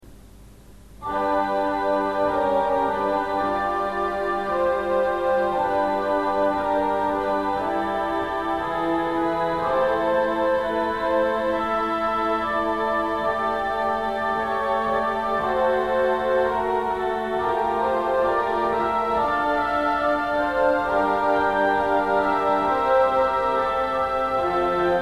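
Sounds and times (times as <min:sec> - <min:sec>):
vox coelestis organ stop: 0:01.0 - 0:24.9.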